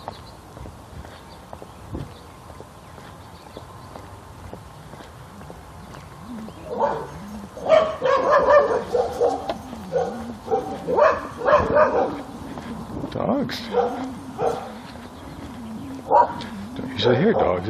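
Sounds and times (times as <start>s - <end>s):
dogs barking and yipping: 4.9s - 17.6s
speech: 17.0s - 17.6s.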